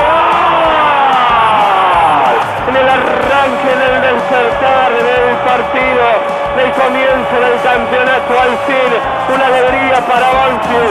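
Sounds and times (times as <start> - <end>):
huge stadium crowd roaring and shouting together: 0.0 - 10.8.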